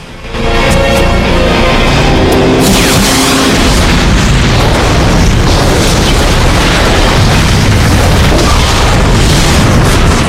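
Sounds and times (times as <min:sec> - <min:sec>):
roaring rumble of destruction: 0:00.0 - 0:10.2
rocket blast destroying cars: 0:02.6 - 0:10.2.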